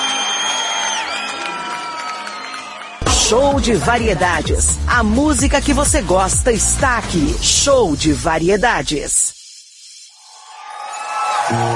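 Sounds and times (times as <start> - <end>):
high whistle-like cry: 0.0 - 2.8
shrill whoops from crowd: 0.0 - 3.0, 10.3 - 11.7
large crowd cheering and applauding: 0.0 - 5.1, 10.2 - 11.7
speech: 3.3 - 9.2, 11.5 - 11.7.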